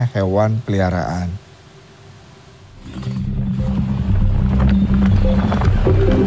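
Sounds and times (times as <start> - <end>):
speech: 0.2 - 1.4
runaway horse hooves galloping onto a road in Bantul Yogyakarta: 3.5 - 6.2.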